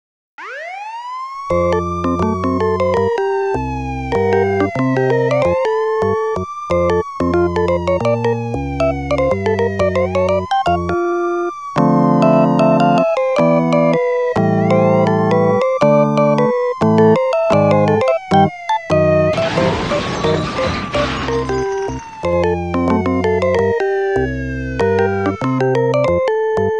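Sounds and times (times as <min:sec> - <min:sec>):
siren: 0:00.4 - 0:26.7
crash: 0:19.3 - 0:23.6.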